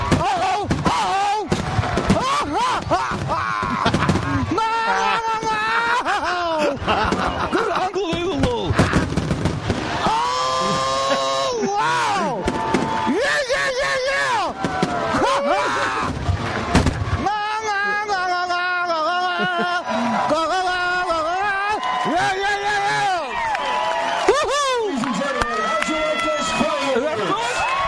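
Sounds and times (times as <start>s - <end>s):
fireworks exploding in booming bursts and crackling pops: 0.0s - 4.6s, 6.8s - 11.1s, 12.3s - 13.2s, 14.5s - 15.3s, 16.0s - 17.4s
onlookers calling out and exclaiming: 0.0s - 9.2s, 9.8s - 16.2s, 17.2s - 27.8s
laughter: 2.2s - 9.1s, 10.5s - 12.4s, 17.7s - 20.7s.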